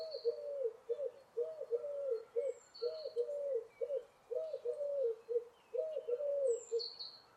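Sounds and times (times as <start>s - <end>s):
bird cooing in low purring phrases: 0.0s - 7.2s.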